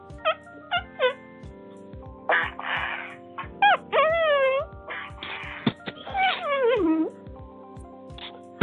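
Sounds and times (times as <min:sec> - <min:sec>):
person imitating a sick dog with high wavering whines and yelps: 0:02.3 - 0:07.2.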